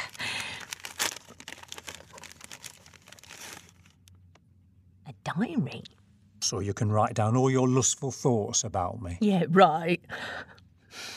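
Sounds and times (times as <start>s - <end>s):
gift wrapping paper crinkling and tearing: 0.0s - 4.1s
speech: 5.3s - 10.1s.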